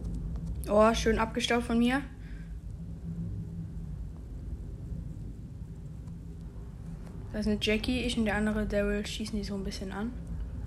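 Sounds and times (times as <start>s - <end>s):
steady low rumble: 0.0s - 10.6s
speech: 0.7s - 2.2s, 7.4s - 10.2s.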